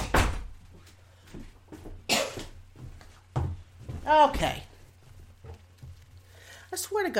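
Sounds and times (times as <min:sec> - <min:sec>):
door closing with thumps and knocks: 0:00.0 - 0:00.6
handling noises: 0:02.5 - 0:06.6
speech: 0:04.1 - 0:04.7, 0:06.8 - 0:07.1.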